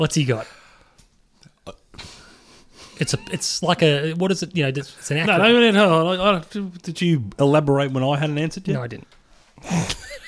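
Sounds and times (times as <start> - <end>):
speech: 0.0 - 0.6, 3.0 - 9.9
heavy breathing by a quiz contestant: 0.4 - 1.0, 1.9 - 3.0.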